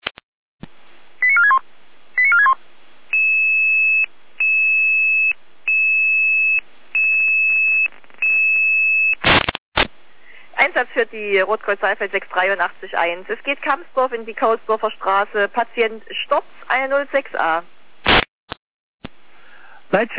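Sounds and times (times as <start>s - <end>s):
rapid descending chirps of dispatch alarm tone: 1.2s - 1.6s, 2.2s - 3.3s
long high beeps of dispatch alarm tone: 1.3s - 1.6s, 2.2s - 9.1s
speech: 10.8s - 17.7s, 19.9s - 20.1s.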